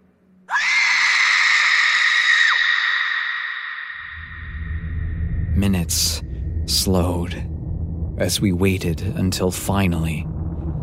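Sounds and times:
woman's loud high-pitched scream: 0.5s - 4.2s
low rumbling noise: 4.6s - 10.8s
speech: 5.6s - 7.5s, 8.2s - 10.3s.

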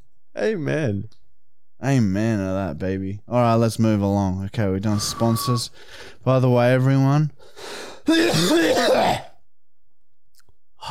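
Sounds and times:
speech: 0.4s - 1.2s, 1.8s - 9.3s
raspy cough: 8.1s - 9.4s.

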